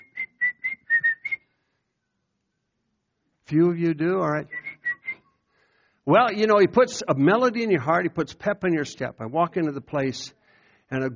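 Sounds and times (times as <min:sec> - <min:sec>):
person whistling a bouncy melody: 0:00.0 - 0:01.6, 0:04.5 - 0:05.4
speech: 0:03.5 - 0:04.6, 0:06.1 - 0:11.1.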